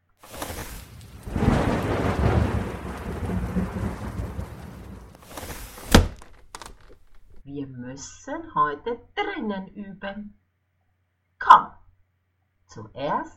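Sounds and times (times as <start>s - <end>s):
steady rain: 0.2s - 7.0s
low rumbling: 0.3s - 5.3s
speech: 7.9s - 10.4s, 11.4s - 11.8s, 12.7s - 13.3s.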